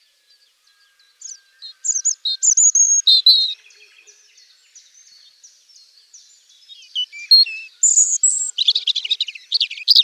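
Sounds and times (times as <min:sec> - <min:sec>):
European robin singing: 0:00.0 - 0:10.0.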